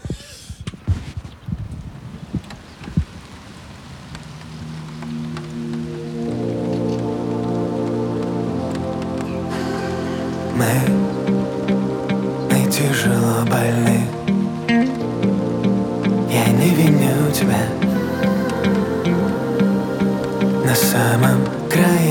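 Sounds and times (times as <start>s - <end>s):
steady rain pattering on a surface: 1.4s - 22.0s
sustained musical tones: 4.9s - 22.0s.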